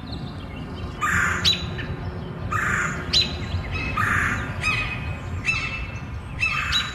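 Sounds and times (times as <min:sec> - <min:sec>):
birds chattering and squawking in treetops: 0:00.0 - 0:06.9
harsh crow-like caws: 0:01.0 - 0:01.5, 0:02.5 - 0:03.1, 0:04.0 - 0:05.0.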